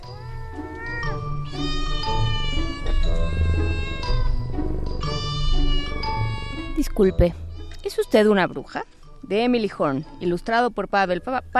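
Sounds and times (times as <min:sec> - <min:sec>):
cat meowing: 0:00.0 - 0:04.4, 0:05.2 - 0:07.0
speech: 0:07.0 - 0:11.5.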